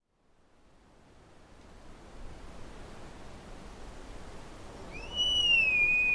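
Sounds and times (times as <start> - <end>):
background hiss: 0.0 - 6.1
sika deer rutting whistle: 4.9 - 6.1.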